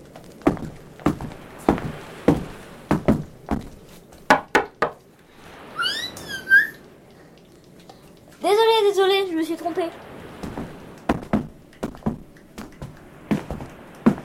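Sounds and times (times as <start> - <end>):
footsteps: 0.0 - 5.1, 10.1 - 14.2
rising whistle-like tones: 5.6 - 6.9
speech: 8.5 - 10.2.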